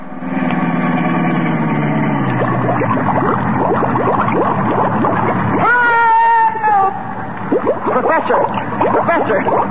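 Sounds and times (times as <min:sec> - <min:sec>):
sealed-up car engine running as it drives into a bay: 0:00.0 - 0:05.7
whining tone: 0:00.0 - 0:09.6
water splashing as car drives into a bay: 0:02.2 - 0:06.1, 0:07.3 - 0:09.6.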